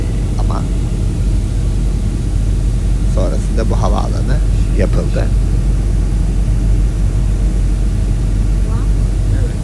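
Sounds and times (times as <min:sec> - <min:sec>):
aircraft engine drone in cabin of plane preparing to land: 0:00.0 - 0:09.6
speech: 0:03.6 - 0:05.6.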